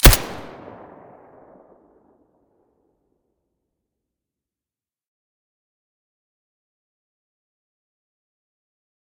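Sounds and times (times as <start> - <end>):
Colt 1911 pistol firing with silencer: 0.0 - 1.5.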